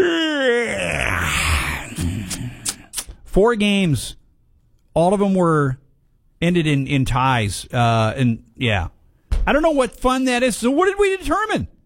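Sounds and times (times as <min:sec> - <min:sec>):
man performing an exaggerated vocal yawn: 0:00.0 - 0:03.0
speech: 0:03.4 - 0:04.2, 0:05.0 - 0:05.8, 0:06.4 - 0:11.7.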